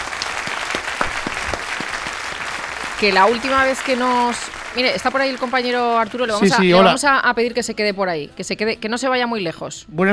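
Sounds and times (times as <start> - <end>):
small group applauding a studio guest: 0.0 - 7.0
speech: 3.0 - 10.1.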